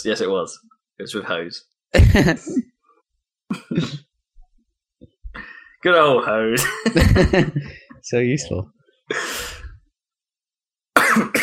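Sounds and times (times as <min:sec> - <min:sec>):
speech: 0:00.0 - 0:02.7, 0:03.5 - 0:04.1, 0:05.4 - 0:09.5
person coughing: 0:02.0 - 0:02.7, 0:03.5 - 0:04.1, 0:11.0 - 0:11.4
laughter: 0:06.6 - 0:07.9.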